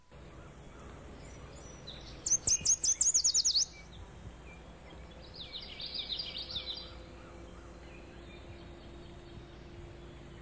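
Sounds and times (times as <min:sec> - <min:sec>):
background hiss: 0:00.0 - 0:10.4
yellow warbler singing: 0:00.1 - 0:10.4.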